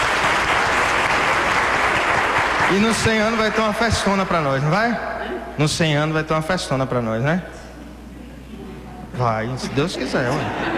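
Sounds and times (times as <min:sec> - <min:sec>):
audience applauding a woman's birthday: 0:00.0 - 0:04.1
speech: 0:02.7 - 0:07.6, 0:09.2 - 0:10.7
laughter: 0:09.5 - 0:10.7.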